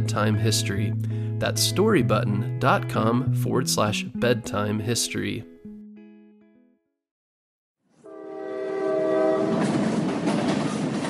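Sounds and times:
speech: 0.1s - 5.5s
powerful train locomotive sounding a loud sustained horn: 8.0s - 10.1s.

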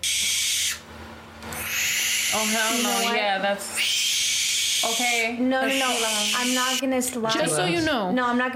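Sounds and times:
young owl screeching: 0.0s - 0.8s, 1.5s - 6.8s
speech: 2.3s - 4.0s, 4.8s - 8.5s.

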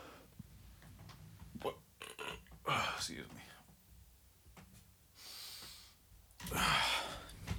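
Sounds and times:
drawn-out burp: 1.6s - 2.8s
breathy, noisy exhalations: 5.2s - 7.4s.

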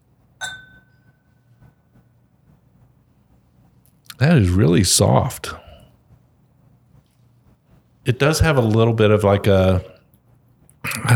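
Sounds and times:
low room hum: 0.0s - 11.1s
whiskey glasses clinking in a toast: 0.4s - 1.3s
speech: 4.2s - 5.7s, 8.1s - 9.9s, 10.9s - 11.1s.

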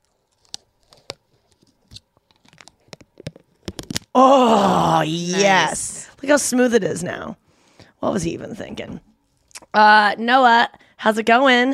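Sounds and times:
protective plastic film peeled off a button: 0.0s - 4.2s
speech: 4.2s - 7.4s, 8.0s - 9.1s, 9.7s - 11.7s.

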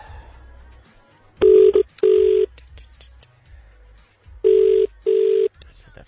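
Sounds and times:
double-pulse phone ringback tone: 1.4s - 2.5s, 4.4s - 5.5s.

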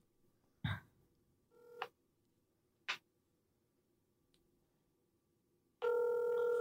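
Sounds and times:
steady outgoing phone ringing tone: 1.6s - 1.9s, 5.8s - 6.5s.

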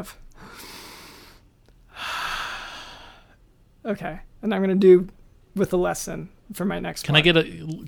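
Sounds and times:
speech: 0.0s - 0.7s, 3.8s - 7.8s
deep breath in: 0.4s - 3.4s.

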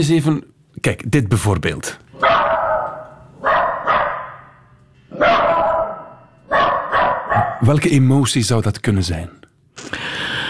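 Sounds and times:
speech: 0.0s - 2.4s, 7.7s - 10.0s
dog giving sharp loud alarm barks: 2.2s - 7.6s.

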